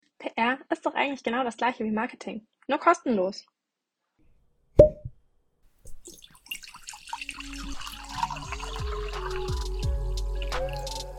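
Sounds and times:
speech: 0:00.4 - 0:03.5
sparkling wine bottle cork pop: 0:04.8 - 0:05.1
prosecco being poured into a glass: 0:05.9 - 0:10.9.

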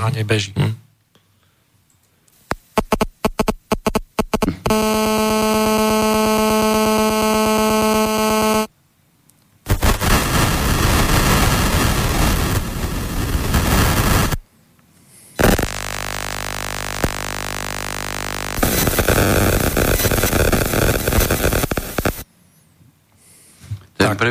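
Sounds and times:
speech: 0:00.0 - 0:00.8
dense hissing static of 4G mobile signal modulation: 0:02.4 - 0:08.7, 0:09.6 - 0:22.3
rapid clicks of 3G mobile signal modulation: 0:02.5 - 0:08.7, 0:15.4 - 0:22.2
droning harmonic buzz of mobile signal modulation: 0:02.6 - 0:08.7, 0:09.7 - 0:14.4, 0:15.4 - 0:22.2.

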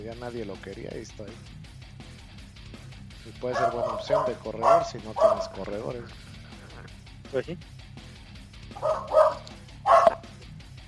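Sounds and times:
speech: 0:00.0 - 0:01.7, 0:03.2 - 0:06.3, 0:07.3 - 0:07.7
dog barking with short sharp woofs: 0:03.5 - 0:05.7, 0:08.7 - 0:10.3.

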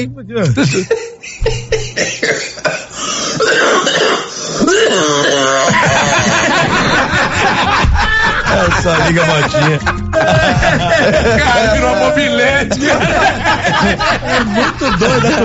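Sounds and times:
speech: 0:00.0 - 0:01.8, 0:08.8 - 0:15.4
laughter: 0:00.4 - 0:02.9, 0:05.3 - 0:15.4
man clearing his throat with a rasping, bleating throat-clear: 0:00.4 - 0:05.9
man coughing: 0:00.4 - 0:06.2.

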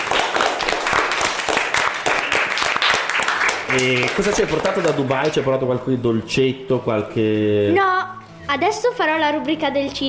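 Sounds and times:
studio audience applause: 0:00.0 - 0:05.6
speech: 0:03.7 - 0:10.0.

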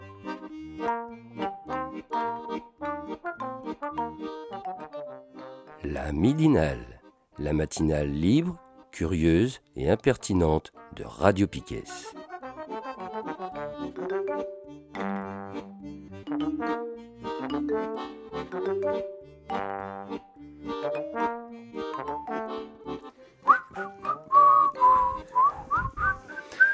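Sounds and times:
bright plucky instrumental backing: 0:00.0 - 0:08.7, 0:11.0 - 0:26.6
speech: 0:06.0 - 0:12.2
person whistling a tune: 0:23.4 - 0:26.7.

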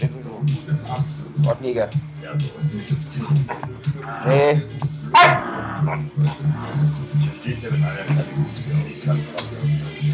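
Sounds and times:
murmuring background: 0:00.0 - 0:10.1
speech: 0:00.0 - 0:10.1
dog barking: 0:05.1 - 0:06.0.

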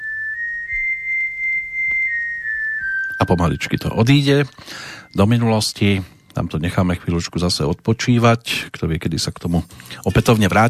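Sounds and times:
steady high-pitched whistle: 0:00.0 - 0:05.6
speech: 0:03.2 - 0:10.6.

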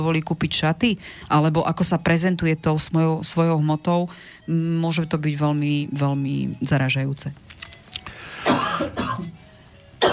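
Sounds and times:
speech: 0:00.0 - 0:07.5
person coughing: 0:08.4 - 0:09.4.

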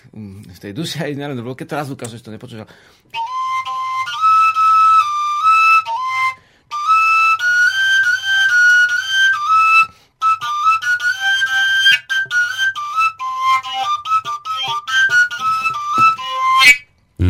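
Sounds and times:
speech: 0:00.1 - 0:03.4
koncovka overtone flute playing a lively breathy melody: 0:03.2 - 0:16.9.

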